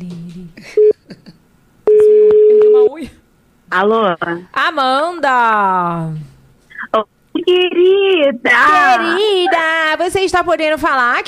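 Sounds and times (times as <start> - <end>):
telephone beep while placing a call: 1.9 - 2.9
speech: 3.7 - 6.3, 6.9 - 11.2.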